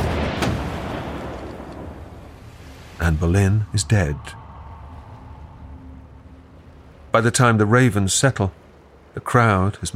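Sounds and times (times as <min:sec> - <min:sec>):
cannon firing from castle walls over London: 0:00.0 - 0:02.2
rumbling wash of noise: 0:00.0 - 0:09.9
speech: 0:03.0 - 0:04.4, 0:07.1 - 0:08.6, 0:09.2 - 0:09.9.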